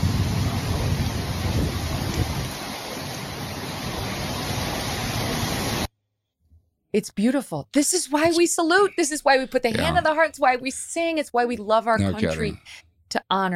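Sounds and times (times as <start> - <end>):
heavy rain pouring down: 0.0 - 5.9
strong gusting wind buffeting the microphone: 0.0 - 5.9
speech: 6.9 - 13.5
laughter: 8.2 - 10.4, 12.0 - 12.6.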